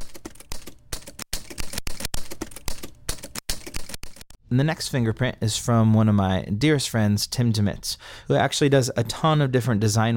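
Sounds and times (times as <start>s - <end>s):
typewriter keystrokes sequenced into a drum fill: 0.0s - 4.3s
speech: 4.5s - 10.1s.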